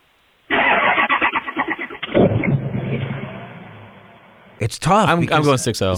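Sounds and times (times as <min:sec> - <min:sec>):
Ford Power Stroke diesel engine cranking and starting to idle: 0:00.5 - 0:04.6
speech: 0:04.6 - 0:05.9.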